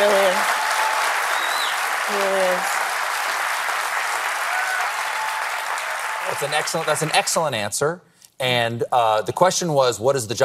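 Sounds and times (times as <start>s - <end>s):
studio audience applause: 0.0s - 7.7s
speech: 6.4s - 10.4s.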